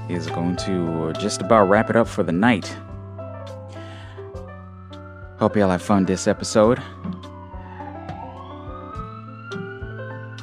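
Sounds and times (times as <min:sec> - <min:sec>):
ambulance siren wailing with a slow rising tone: 0:00.0 - 0:10.4
speech: 0:00.1 - 0:02.9, 0:05.4 - 0:07.2.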